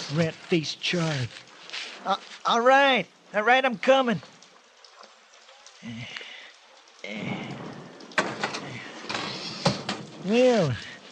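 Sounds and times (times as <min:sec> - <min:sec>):
steady rain falling outside a door: 0:00.0 - 0:11.1
speech: 0:00.1 - 0:04.3, 0:05.8 - 0:06.2, 0:07.0 - 0:07.5, 0:10.2 - 0:10.9
door opening: 0:08.2 - 0:10.2.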